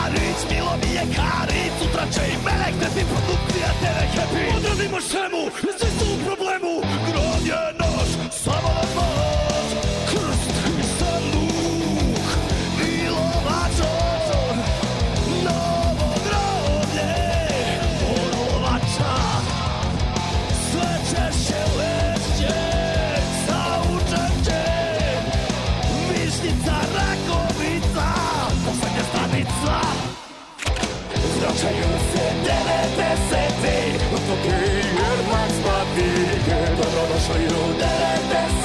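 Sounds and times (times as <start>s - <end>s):
forceful almost shouted vocals: 0.0s - 38.6s
loud dense song with full-band backing: 0.0s - 38.6s.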